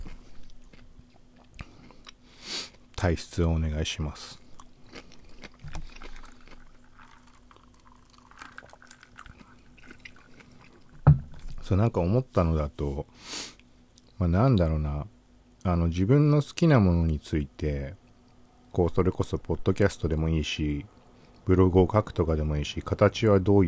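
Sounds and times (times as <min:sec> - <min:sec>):
chewing and crunching food against the microphone: 0:00.0 - 0:02.9, 0:04.2 - 0:11.7
speech: 0:03.0 - 0:04.4, 0:11.7 - 0:13.4, 0:14.2 - 0:18.0, 0:18.8 - 0:23.6
sipping a drink: 0:04.6 - 0:11.6
small drips: 0:05.6 - 0:11.0
sharp thump: 0:11.0 - 0:11.3.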